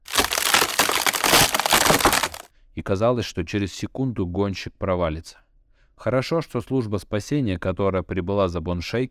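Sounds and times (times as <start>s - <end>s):
ice cracking and crunching under heavy weight: 0.0s - 2.5s
speech: 2.8s - 5.4s, 6.0s - 9.0s.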